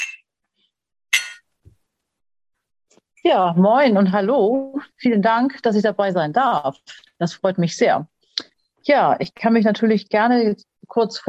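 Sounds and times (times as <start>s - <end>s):
glasses clinking in a toast: 0.0s - 0.2s, 1.2s - 1.4s
speech: 3.2s - 11.2s.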